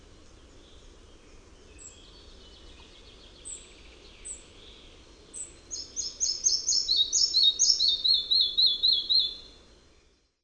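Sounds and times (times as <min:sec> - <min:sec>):
soft steady background hiss: 0:00.0 - 0:10.4
red-breasted flycatcher singing: 0:00.4 - 0:10.2.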